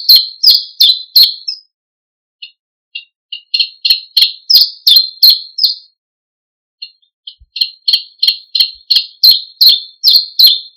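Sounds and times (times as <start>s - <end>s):
common chiffchaff singing a brisk series of sharp high notes: 0.0s - 1.7s, 3.0s - 5.9s, 6.8s - 10.7s.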